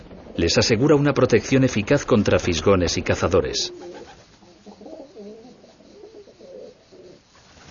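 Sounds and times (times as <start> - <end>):
faint constant hiss: 0.0 - 7.6
speech: 0.4 - 3.9
pigeons cooing inside the stone walls of a well: 3.0 - 7.6.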